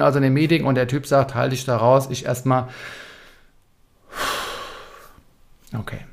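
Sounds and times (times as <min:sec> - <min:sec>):
speech: 0:00.0 - 0:03.1, 0:05.7 - 0:06.1
slow deep breathing in and out: 0:02.7 - 0:05.3.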